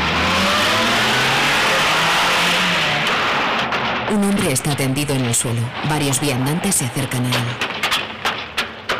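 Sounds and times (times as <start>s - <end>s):
car engine revving and accelerating as it pulls away: 0.0s - 4.1s
road noise: 0.0s - 8.9s
speech: 4.1s - 7.8s.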